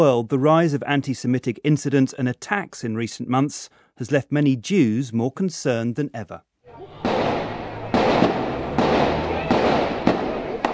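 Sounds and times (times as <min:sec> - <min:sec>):
speech: 0:00.0 - 0:07.0
gunfire during an attack on a kosher market in New Jersey: 0:06.8 - 0:10.7.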